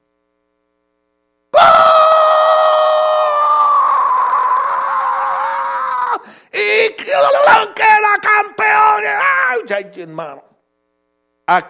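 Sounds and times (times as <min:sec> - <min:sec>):
person screaming imitating a goal celebration shout: 0:01.6 - 0:09.7
speech: 0:07.6 - 0:10.5, 0:11.5 - 0:11.6.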